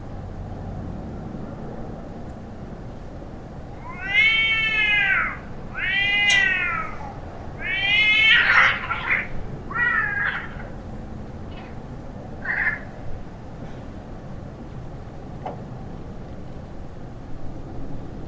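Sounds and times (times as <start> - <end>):
cats yowling in a fight: 3.8 - 10.9, 11.5 - 11.8, 12.4 - 13.0.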